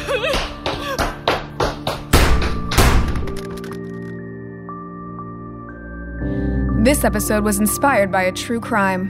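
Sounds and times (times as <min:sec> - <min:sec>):
running footsteps of someone fleeing: 0:00.1 - 0:03.7
speech: 0:06.9 - 0:09.0.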